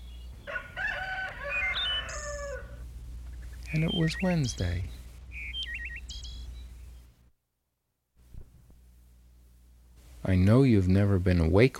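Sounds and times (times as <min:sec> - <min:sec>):
steady low hum: 0:00.0 - 0:07.4, 0:08.2 - 0:11.7
rooster crowing at daybreak in the countryside: 0:00.4 - 0:02.9
speech: 0:03.7 - 0:05.0, 0:10.3 - 0:11.7.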